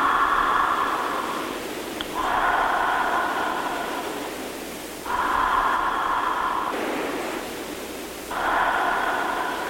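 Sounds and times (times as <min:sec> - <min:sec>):
deep slow breathing during a guided relaxation exercise: 0:00.0 - 0:09.6.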